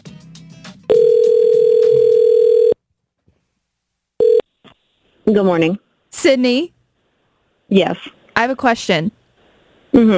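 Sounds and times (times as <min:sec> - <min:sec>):
loud steady telephone dial tone: 0:00.9 - 0:02.8, 0:04.2 - 0:04.4
speech: 0:05.3 - 0:06.8, 0:07.7 - 0:09.2, 0:10.0 - 0:10.1.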